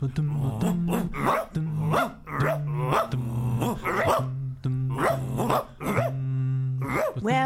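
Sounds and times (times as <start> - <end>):
speech: 0.0 - 2.2
dog barking: 0.6 - 7.3.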